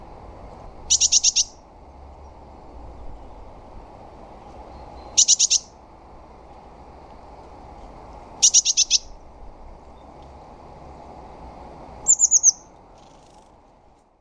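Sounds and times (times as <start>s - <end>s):
faint low background noise: 0.0s - 14.1s
high bird calls: 0.9s - 1.6s, 4.7s - 5.8s, 8.4s - 9.2s, 12.0s - 13.4s.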